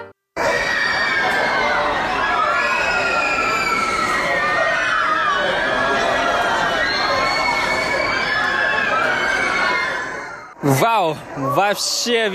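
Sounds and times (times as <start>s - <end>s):
many people screaming on a high amusement park ride: 0.4s - 10.6s
speech: 11.7s - 12.3s.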